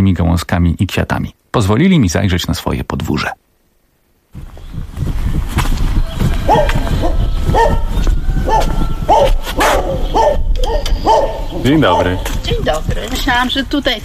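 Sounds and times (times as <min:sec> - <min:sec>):
speech: 0:00.0 - 0:03.4, 0:11.1 - 0:14.0
rustling noise: 0:00.1 - 0:14.0
dog barking in a farmyard: 0:06.5 - 0:07.9, 0:08.5 - 0:12.3.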